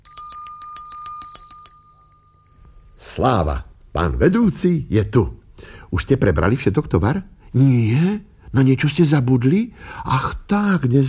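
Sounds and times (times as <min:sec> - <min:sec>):
small hand bell ringing: 0:00.0 - 0:04.2
speech: 0:03.2 - 0:11.0.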